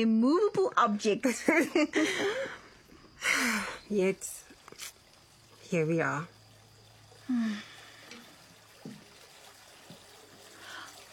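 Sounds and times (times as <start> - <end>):
speech: 0.0 - 2.6, 3.2 - 4.4, 5.7 - 6.4, 7.3 - 7.7
bath water running and overflowing: 0.0 - 11.1.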